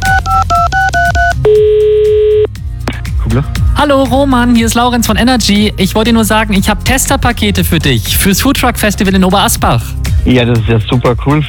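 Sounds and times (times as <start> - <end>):
telephone keypad two-tone dialing beeps for an outgoing call: 0.0 - 2.5
speech: 3.4 - 11.4.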